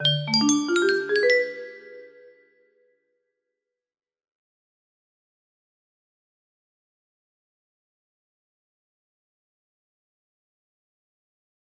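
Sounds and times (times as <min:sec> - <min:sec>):
music box level-up jingle: 0:00.0 - 0:02.3.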